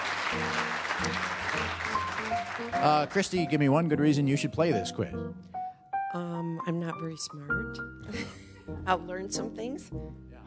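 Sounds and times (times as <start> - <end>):
quiz-show audience applause: 0.0 - 3.8
speech: 0.3 - 10.2.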